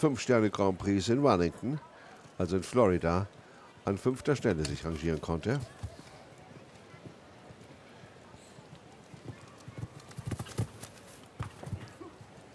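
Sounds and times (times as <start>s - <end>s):
speech: 0.0s - 5.8s
horse hooves clip-clopping: 8.6s - 12.5s.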